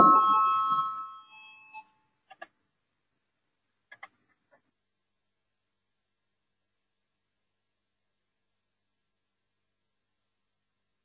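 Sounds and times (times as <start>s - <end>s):
bell rung in parliament to call a vote: 0.0s - 1.9s
faint clicks: 3.9s - 4.7s.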